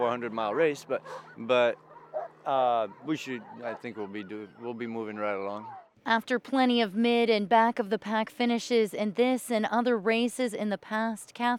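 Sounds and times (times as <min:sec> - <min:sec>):
young sled dogs barking and yipping before a long-distance race: 0:00.0 - 0:06.0
speech: 0:00.0 - 0:11.5.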